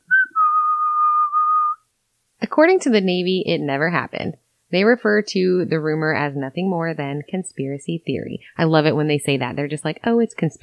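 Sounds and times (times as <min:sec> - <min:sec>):
person whistling a short casual tune: 0:00.0 - 0:01.8
speech: 0:02.6 - 0:10.6.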